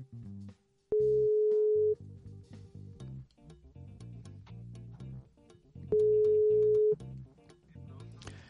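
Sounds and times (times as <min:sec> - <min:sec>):
outgoing WhatsApp call ringback tones: 0:00.9 - 0:02.0, 0:05.9 - 0:07.0
rhythmic music: 0:02.1 - 0:08.4.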